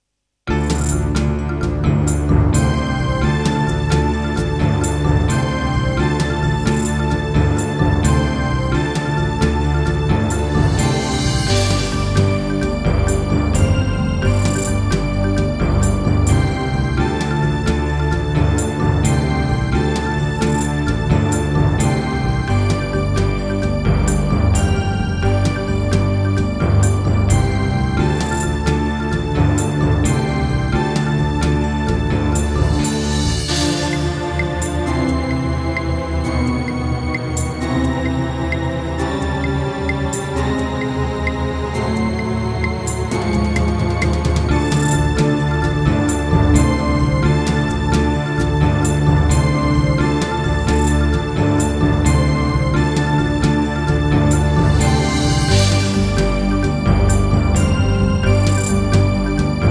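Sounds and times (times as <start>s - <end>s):
Yamaha TG100 wavetable synthesizer: 0.5s - 59.6s.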